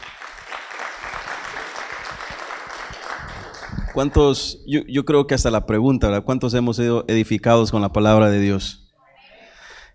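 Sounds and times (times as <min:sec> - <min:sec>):
audience applauding: 0:00.0 - 0:04.4
speech: 0:04.0 - 0:08.8.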